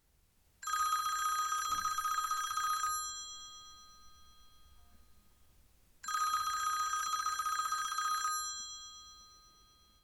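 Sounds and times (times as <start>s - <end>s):
telephone ringing: 0.6s - 4.4s, 6.0s - 9.4s.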